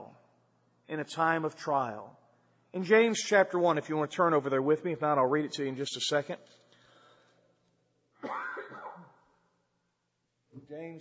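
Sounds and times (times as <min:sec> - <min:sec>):
speech: 0:00.9 - 0:06.6, 0:10.6 - 0:10.9
preacher coughing during his sermon: 0:08.2 - 0:09.2.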